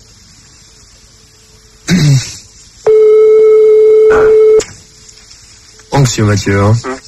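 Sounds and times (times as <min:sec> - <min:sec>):
telephone ringing during a prank call: 0:02.9 - 0:04.6
speech: 0:06.0 - 0:07.0.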